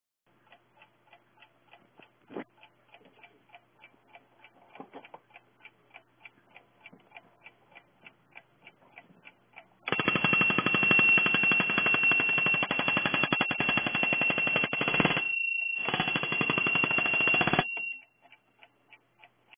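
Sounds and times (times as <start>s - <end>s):
Junghans alarm clock ringing: 9.9s - 18.1s.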